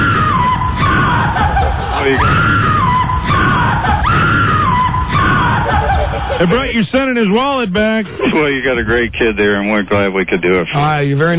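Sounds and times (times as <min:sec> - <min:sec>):
loud sustained scream in long wavering cries: 0:00.0 - 0:05.9
laughter: 0:01.0 - 0:09.1
speech: 0:06.4 - 0:11.3.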